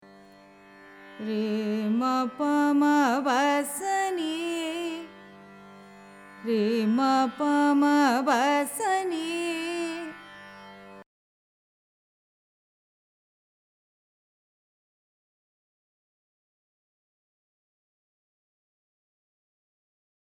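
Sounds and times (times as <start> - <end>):
Carnatic music in raga Madhyamavati: 0.0 - 11.1.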